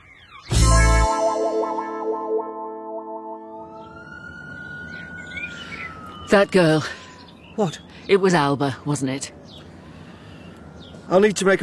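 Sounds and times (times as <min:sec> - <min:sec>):
police car siren wailing: 0:00.5 - 0:07.5, 0:09.8 - 0:11.6
speech: 0:06.3 - 0:07.0, 0:07.6 - 0:09.4, 0:11.1 - 0:11.6.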